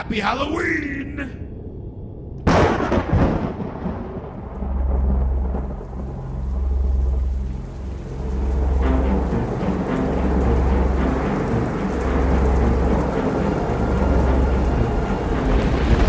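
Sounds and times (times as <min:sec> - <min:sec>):
speech: 0:00.0 - 0:01.6
thunderclap and rolling thunder: 0:02.4 - 0:07.7, 0:12.5 - 0:16.0
heavy rain: 0:02.5 - 0:16.0.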